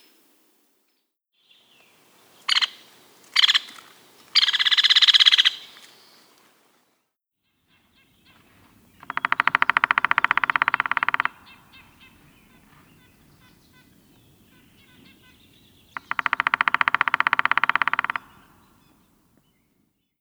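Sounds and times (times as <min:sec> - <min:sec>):
White-headed Woodpecker: 0:02.4 - 0:06.0, 0:08.1 - 0:19.5.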